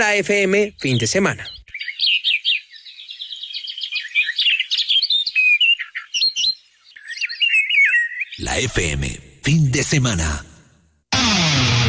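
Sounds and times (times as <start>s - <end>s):
speech: 0.0s - 1.6s, 8.4s - 10.5s
birds chirping and singing: 0.0s - 8.8s.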